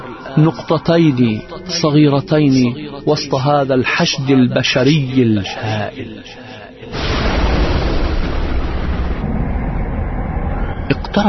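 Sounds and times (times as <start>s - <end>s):
speech: 0.4s - 6.9s, 10.9s - 11.2s
loud explosive blast of the sea into fire: 6.9s - 10.0s
continuous heavy roaring rumble: 7.0s - 11.2s.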